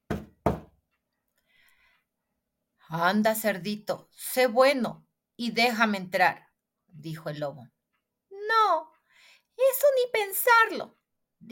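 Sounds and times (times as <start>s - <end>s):
knocking on the door of a straw house: 0.0s - 0.8s
speech: 2.9s - 7.8s, 9.6s - 11.4s.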